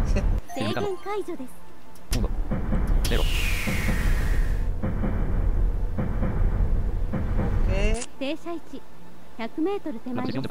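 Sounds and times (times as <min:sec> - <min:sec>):
speech: 0:00.2 - 0:02.3, 0:03.1 - 0:03.9, 0:08.2 - 0:10.4
train running in a train simulator video game: 0:02.0 - 0:10.2.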